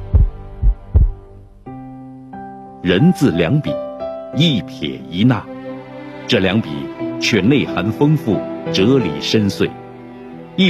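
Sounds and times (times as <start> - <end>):
heartbeat sound effect with deep low thumps: 0.0 - 1.3
speech: 2.8 - 5.5, 6.3 - 9.8.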